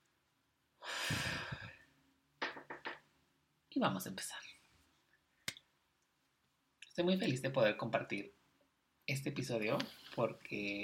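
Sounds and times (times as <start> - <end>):
deep slow breath: 0.8 - 1.9
speech: 3.8 - 4.6, 7.0 - 8.4, 9.1 - 10.8.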